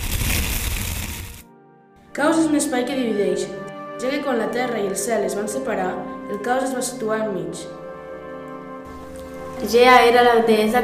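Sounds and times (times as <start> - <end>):
fire crackling and roaring: 0.0 - 1.4
speech: 2.2 - 7.8, 9.6 - 10.8.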